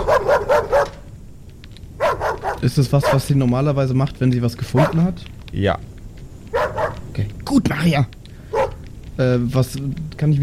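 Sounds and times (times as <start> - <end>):
dog barking loudly: 0.0 - 1.0, 2.0 - 3.2, 6.5 - 7.0, 8.5 - 8.8
speech: 2.6 - 5.9, 7.2 - 8.2, 9.2 - 10.4.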